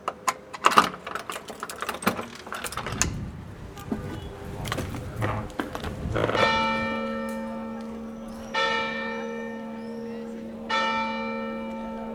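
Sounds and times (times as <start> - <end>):
clattering, rattling mechanical noise: 0.0 - 7.6
church bell ringing alarm: 5.3 - 12.1.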